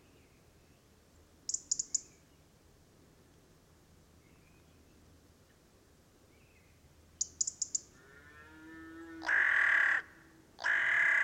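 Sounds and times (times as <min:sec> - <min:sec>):
carrion crow giving hoarse grating caws: 0:09.2 - 0:11.2.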